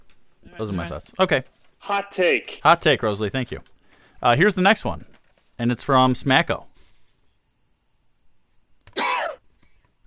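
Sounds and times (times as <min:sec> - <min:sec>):
speech: 0:00.6 - 0:06.7
person coughing: 0:08.9 - 0:09.4.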